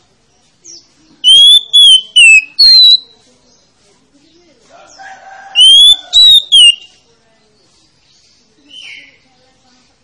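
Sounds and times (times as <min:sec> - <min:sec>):
Oriental magpie-robin singing whistled notes: 0:01.2 - 0:03.1, 0:05.6 - 0:06.9.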